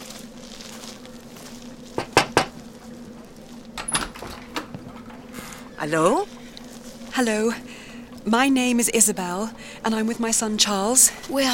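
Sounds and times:
low steady hum: 0:00.0 - 0:11.5
knocking on a door: 0:02.0 - 0:02.6
faint rattling: 0:03.7 - 0:06.5
speech: 0:05.8 - 0:06.4, 0:07.2 - 0:11.5.

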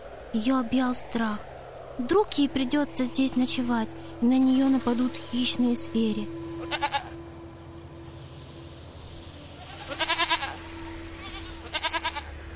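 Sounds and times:
steady low hum: 0:00.0 - 0:12.5
speech: 0:00.3 - 0:06.8
sheep bleating in short wavering cries: 0:06.6 - 0:07.2, 0:09.6 - 0:12.3.

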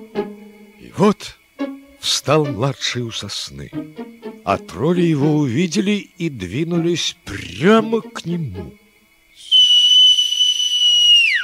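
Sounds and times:
speech: 0:01.0 - 0:01.4, 0:02.0 - 0:08.8
loud high-pitched whistle: 0:09.3 - 0:11.4.

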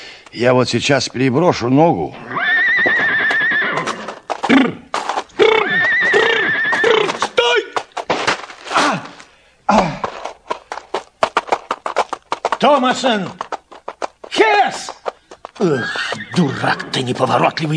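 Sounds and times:
hoof clatter and scuffling of a bolting horse: 0:00.2 - 0:17.7
speech: 0:00.3 - 0:02.4, 0:04.5 - 0:04.8, 0:12.6 - 0:13.4, 0:15.6 - 0:17.7
horse whinnying loudly in shrill wavering bursts: 0:02.1 - 0:07.8, 0:14.7 - 0:17.1.

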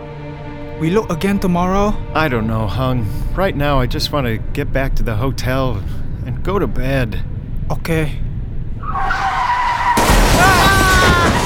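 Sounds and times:
speech: 0:00.8 - 0:08.2
tires skidding and screeching: 0:01.3 - 0:11.4
motorcycle crashing into a car: 0:09.8 - 0:11.4.

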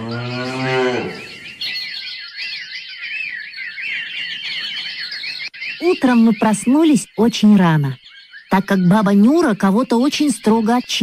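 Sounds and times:
single cow mooing: 0:00.0 - 0:01.4
chorus of twittering birdsong: 0:00.0 - 0:11.0
speech: 0:06.0 - 0:11.0.

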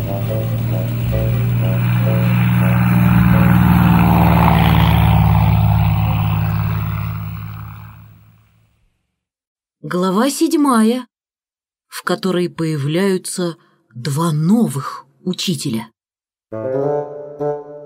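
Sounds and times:
aircraft engine starting with a droning hum: 0:00.0 - 0:08.6
plane pulling away: 0:00.0 - 0:08.7
speech: 0:09.9 - 0:11.1, 0:11.9 - 0:15.9, 0:16.5 - 0:17.5.

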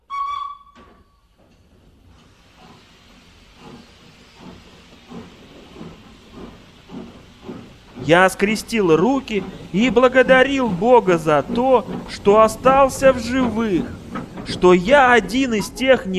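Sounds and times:
steam train whistle in Solikamsk Russia: 0:00.0 - 0:01.2
steam train hissing in Solikamsk Russia: 0:01.7 - 0:16.1
speech: 0:08.1 - 0:16.1.

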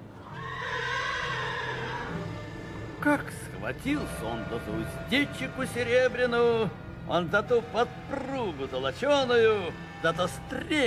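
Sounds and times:
warhorse whinnying: 0:00.2 - 0:02.9
speech: 0:03.0 - 0:10.8.

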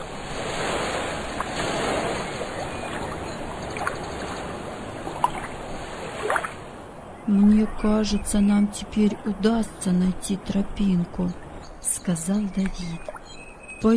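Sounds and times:
sea waves crashing against coastal rocks: 0:00.0 - 0:06.6
speech: 0:07.3 - 0:11.4, 0:12.0 - 0:13.1.

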